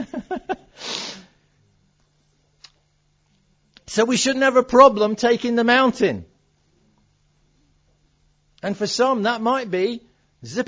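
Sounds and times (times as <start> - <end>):
person sneezing: 0.7 - 1.4
speech: 3.9 - 6.3, 8.6 - 10.6.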